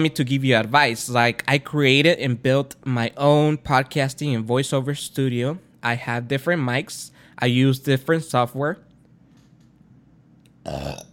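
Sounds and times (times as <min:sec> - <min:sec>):
speech: 0:00.0 - 0:08.9, 0:10.6 - 0:11.1
loud low rumbling belch: 0:10.6 - 0:11.1.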